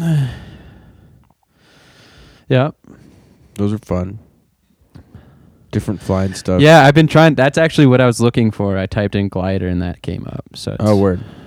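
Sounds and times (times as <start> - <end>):
speech: 0.0 - 0.4, 2.5 - 3.0, 3.6 - 4.3, 5.7 - 11.4
person yawning with a voiced groan and breathy exhale: 0.0 - 0.6.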